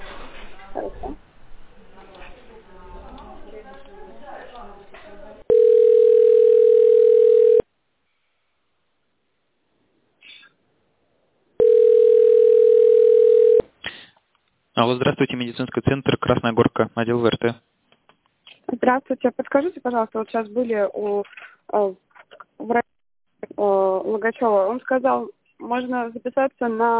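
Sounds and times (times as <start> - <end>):
telephone line beep during a call transfer to a medical center department: 5.5 - 7.6, 11.6 - 13.6
speech: 14.8 - 17.7, 18.8 - 22.0, 22.6 - 22.8, 23.6 - 26.9.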